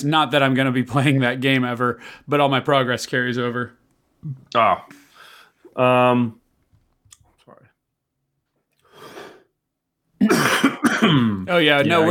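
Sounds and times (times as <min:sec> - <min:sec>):
speech: 0:00.0 - 0:05.0, 0:05.8 - 0:06.4, 0:10.2 - 0:10.6, 0:11.5 - 0:12.0
person coughing harshly: 0:10.2 - 0:12.0
person exclaiming: 0:11.8 - 0:12.0.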